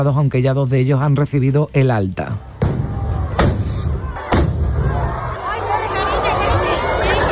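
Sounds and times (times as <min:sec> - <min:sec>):
speech: 0:00.0 - 0:02.5
large crowd chattering in a plaza: 0:02.3 - 0:07.3
festival rockets bursting over a town hall balcony: 0:02.6 - 0:05.1.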